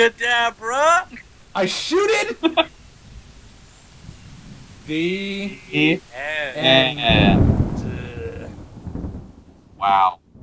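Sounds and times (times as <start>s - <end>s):
speech: 0.0s - 2.7s, 4.9s - 7.4s, 9.8s - 10.2s
deep rolling thunder rumbling: 1.2s - 10.4s
loud voice-like tonal burst: 4.9s - 8.5s, 9.8s - 10.2s.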